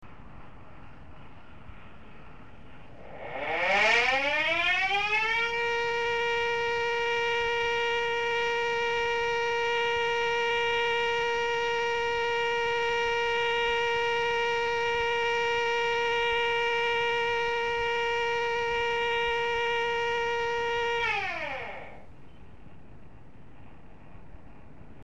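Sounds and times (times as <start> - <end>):
80 Hz siren: 2.6 - 22.1.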